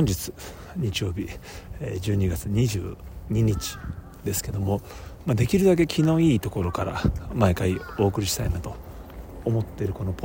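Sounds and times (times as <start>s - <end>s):
speech: 0.0s - 10.2s
crows cawing outdoors near a museum gate in Tokyo: 3.3s - 5.1s, 6.4s - 8.6s.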